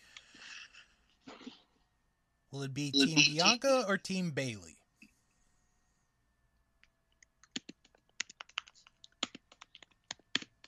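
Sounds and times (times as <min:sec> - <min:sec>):
speech: 0:02.5 - 0:04.8
computer keyboard typing: 0:07.3 - 0:10.6.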